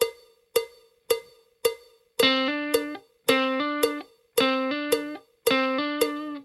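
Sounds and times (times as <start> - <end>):
blues guitar: 2.2 - 6.4.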